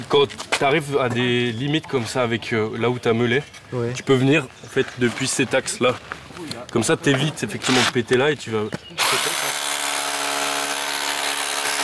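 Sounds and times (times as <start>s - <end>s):
speech: 0.1s - 9.3s
hammer drill running continuously: 9.0s - 11.8s.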